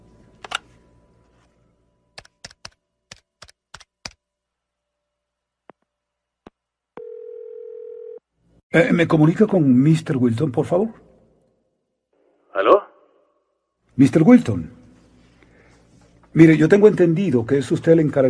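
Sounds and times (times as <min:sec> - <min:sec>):
sharp clicks: 0:02.2 - 0:04.2
telephone dial tone after a hotel handset is picked up: 0:07.0 - 0:08.2
speech: 0:08.7 - 0:11.1, 0:14.0 - 0:14.8, 0:16.4 - 0:18.2.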